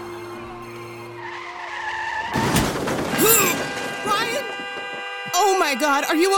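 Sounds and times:
car tires squealing in a high-pitched skid: 0:01.1 - 0:05.5
speech: 0:05.4 - 0:06.3.

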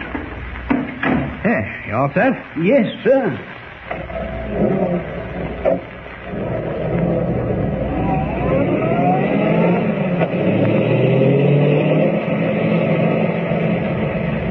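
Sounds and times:
speech: 0:01.4 - 0:05.1
car engine revving and driving off: 0:04.0 - 0:14.4.

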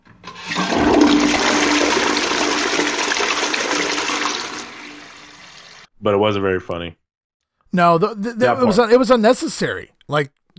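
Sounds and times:
toilet flushing: 0:00.2 - 0:05.9
speech: 0:06.0 - 0:07.0, 0:07.7 - 0:10.5.

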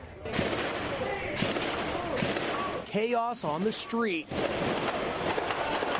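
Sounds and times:
heavy gunfire: 0:00.3 - 0:02.8, 0:04.4 - 0:05.9
speech: 0:02.9 - 0:05.1.

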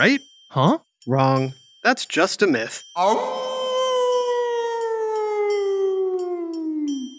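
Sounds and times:
speech: 0:00.0 - 0:03.6
wolf howling: 0:03.0 - 0:07.1.

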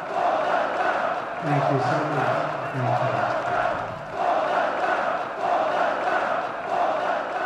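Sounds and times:
huge crowd of thousands chanting a two-part name in unison: 0:00.0 - 0:07.4
speech: 0:01.4 - 0:03.5.

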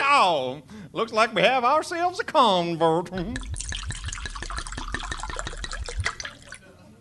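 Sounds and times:
speech: 0:00.2 - 0:03.6
bourbon glugging from a bottle into a glass: 0:03.2 - 0:06.7.

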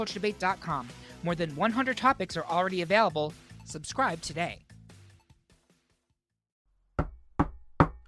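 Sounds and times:
speech: 0:00.0 - 0:04.6
firm knocking on a door: 0:07.0 - 0:08.0.

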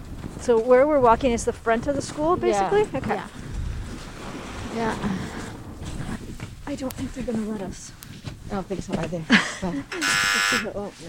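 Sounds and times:
speech: 0:00.4 - 0:03.4, 0:04.7 - 0:05.4, 0:06.7 - 0:11.0
door buzzer: 0:09.9 - 0:10.7.

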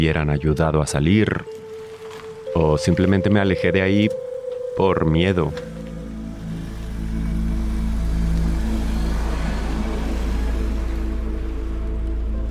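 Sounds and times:
speech: 0:00.0 - 0:01.6, 0:02.5 - 0:04.2, 0:04.8 - 0:05.7
road noise: 0:00.0 - 0:12.4
car engine humming: 0:01.6 - 0:12.4
hiss of rain: 0:05.6 - 0:12.4.

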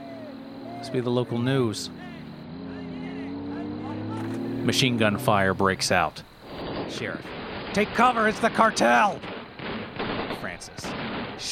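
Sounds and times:
truck engines droning: 0:00.0 - 0:10.1
speech: 0:00.8 - 0:02.2, 0:04.7 - 0:06.3, 0:06.9 - 0:09.3, 0:10.6 - 0:11.4.

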